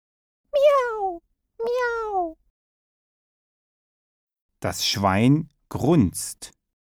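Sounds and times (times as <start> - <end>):
cat meowing: 0.6 - 2.4
speech: 4.6 - 6.6.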